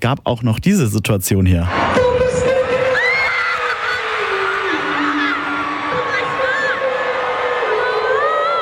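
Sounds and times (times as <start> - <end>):
speech: 0.0 - 2.5
dense crowd of fans screaming and whooping at a concert in Munich, Germany: 1.7 - 8.5.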